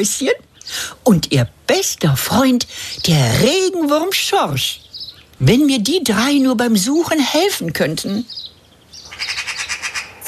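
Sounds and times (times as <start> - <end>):
speech: 0.0 - 8.5
magpie calling in a garden: 2.3 - 10.2.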